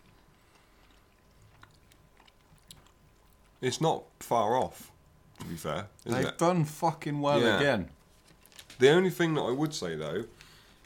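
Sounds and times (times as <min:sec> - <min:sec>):
crisps being chewed: 0:00.0 - 0:03.7, 0:08.1 - 0:08.9, 0:10.0 - 0:10.8
speech: 0:03.6 - 0:08.0, 0:08.8 - 0:10.4.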